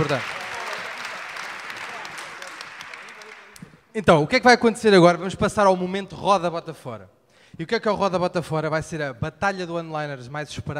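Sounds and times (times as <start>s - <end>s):
speech: 0.0s - 0.4s, 4.0s - 10.7s
audience applause at a live comedy stage show: 0.0s - 3.8s.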